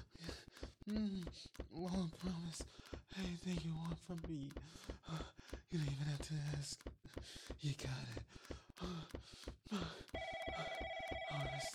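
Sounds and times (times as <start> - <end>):
rhythmic soft thumps: 0.0 - 11.7
speech: 0.8 - 10.0
office phone ringing with a steady electronic tone: 10.2 - 11.7.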